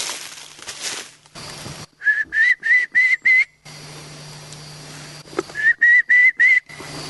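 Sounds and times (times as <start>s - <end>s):
steady low hum: 0.2s - 7.0s
hunter whistling a kiki call imitating a young wild turkey: 2.0s - 3.6s, 5.5s - 6.9s.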